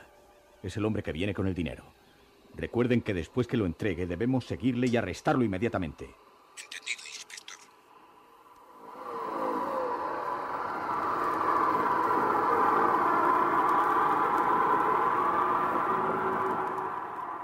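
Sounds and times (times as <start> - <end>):
speech: 0.6 - 2.0, 2.6 - 6.8
car engine humming while rolling slowly: 8.6 - 17.4.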